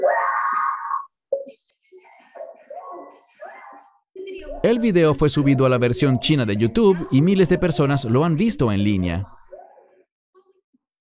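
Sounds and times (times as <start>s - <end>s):
woman's loud drawn-out wailing scream: 0.0s - 1.1s
speech: 4.6s - 9.4s.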